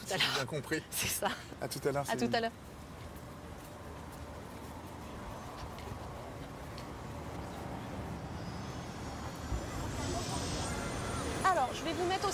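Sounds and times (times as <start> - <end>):
speech: 0.1 - 2.7
high turbine whine: 5.3 - 12.3
helicopter engine and rotor roar: 7.2 - 12.3.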